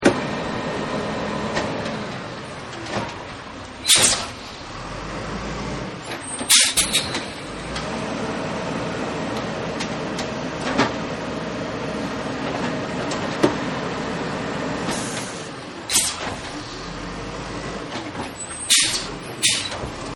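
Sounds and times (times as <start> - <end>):
garbage truck: 0.0 - 20.1.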